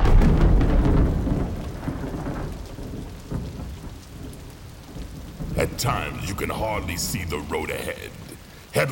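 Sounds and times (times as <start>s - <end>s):
deep roll of thunder rumbling: 0.0s - 8.9s
heavy rain pouring: 0.0s - 8.9s
speech: 5.8s - 8.9s.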